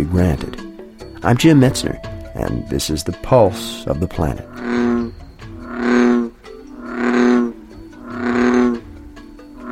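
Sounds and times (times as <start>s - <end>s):
speech: 0.0s - 0.6s, 1.2s - 4.5s
male bullfrog bellowing: 4.3s - 9.7s.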